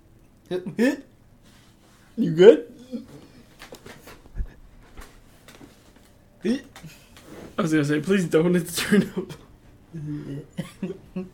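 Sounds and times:
speech: 0.5s - 1.1s, 2.2s - 3.2s, 6.4s - 7.0s, 7.6s - 9.4s, 10.0s - 11.3s
person gagging: 2.7s - 3.4s, 9.9s - 10.9s.

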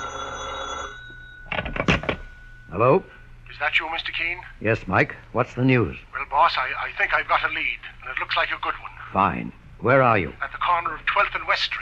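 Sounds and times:
telephone bell ringing: 0.0s - 2.9s
speech: 2.8s - 11.7s.

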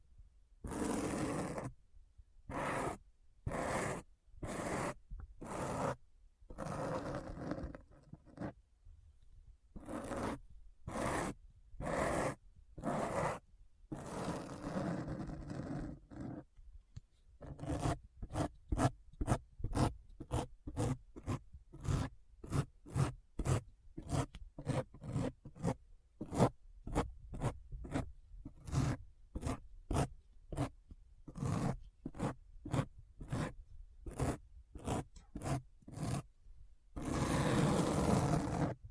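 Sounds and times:
dry scratching strokes: 0.7s - 1.7s, 2.5s - 8.6s, 9.8s - 16.4s, 17.4s - 30.8s, 31.3s - 33.6s, 37.0s - 38.8s.

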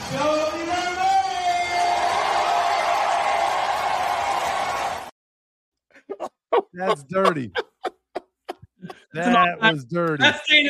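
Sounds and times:
large crowd cheering at a training camp: 0.0s - 5.1s
laughter: 6.0s - 10.4s
speech: 6.8s - 7.6s, 9.2s - 10.6s.

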